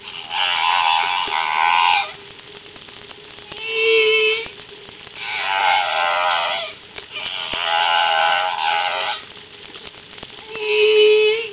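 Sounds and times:
whale calls: 0.0s - 2.3s, 3.5s - 4.6s, 5.2s - 9.5s, 10.4s - 11.5s.

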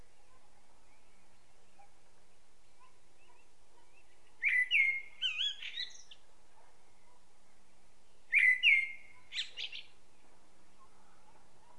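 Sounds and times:
Common blackbird Turdus merula singing a fluty whistle and twitter: 4.0s - 6.2s, 8.3s - 9.9s.

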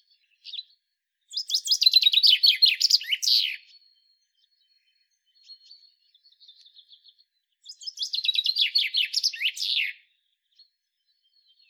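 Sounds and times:
common chaffinch Fringilla coelebs singing: 1.3s - 3.6s, 7.7s - 10.0s.

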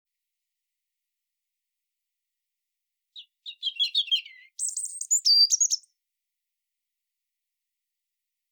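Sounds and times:
European robin Erithacus rubecula singing: 3.2s - 5.9s.

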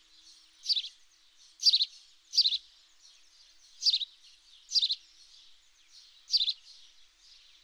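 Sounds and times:
house sparrow Passer domesticus giving high chirps: 0.6s - 0.9s, 1.6s - 2.6s, 3.8s - 4.1s, 4.7s - 5.0s, 6.3s - 6.6s.

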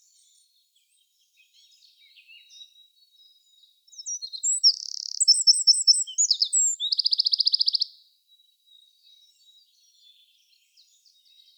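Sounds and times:
Eurasian wren Troglodytes troglodytes singing: 3.9s - 7.9s.

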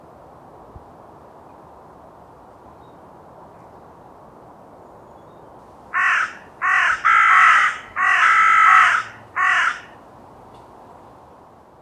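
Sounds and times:
carrion crow Corvus corone cawing: 5.9s - 10.0s.

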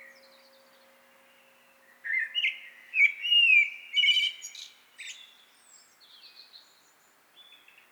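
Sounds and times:
common blackbird Turdus merula singing a fluty warbled phrase: 2.0s - 5.3s.

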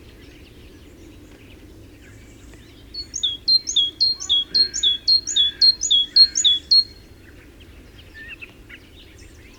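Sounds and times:
great tit singing, Parus major: 3.0s - 6.9s.

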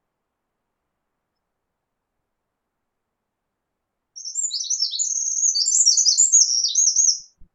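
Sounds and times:
Eurasian wren Troglodytes troglodytes singing: 4.2s - 7.4s.

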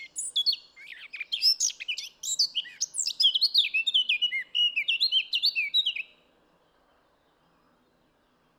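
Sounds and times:
Eurasian blackcap Sylvia atricapilla singing: 0.0s - 6.0s.

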